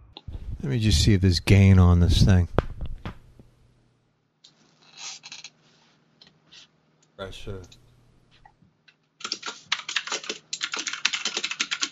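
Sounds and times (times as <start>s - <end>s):
speech: 0.6s - 2.6s, 7.4s - 7.8s
loud typing on a computer keyboard: 9.2s - 11.9s.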